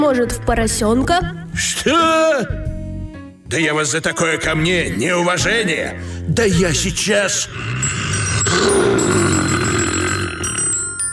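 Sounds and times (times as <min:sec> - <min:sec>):
speech: 0:00.0 - 0:02.7, 0:03.5 - 0:09.2
telephone ringing: 0:07.9 - 0:11.1.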